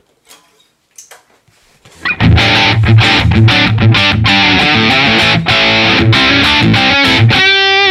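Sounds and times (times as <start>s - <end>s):
electric guitar played through a modeled amplifier with heavy distortion: 2.0s - 7.9s.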